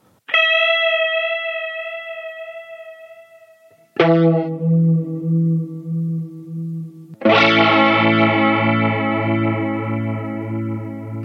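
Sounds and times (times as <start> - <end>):
sustained synthesized tone with sine chorus effect: 1.0 - 11.2.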